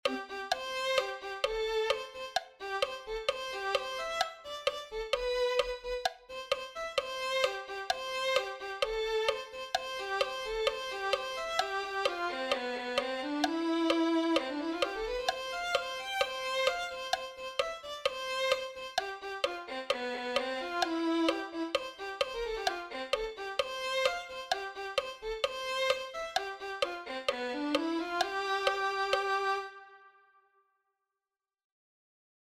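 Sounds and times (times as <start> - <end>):
violin: 0.0 - 30.4.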